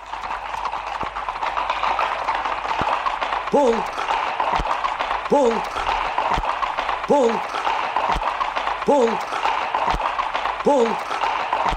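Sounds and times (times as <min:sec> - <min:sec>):
cavalry horses galloping in pursuit: 0:00.0 - 0:11.7
speech: 0:03.5 - 0:04.7, 0:05.3 - 0:06.4, 0:07.1 - 0:07.6, 0:08.8 - 0:09.4, 0:10.6 - 0:11.1.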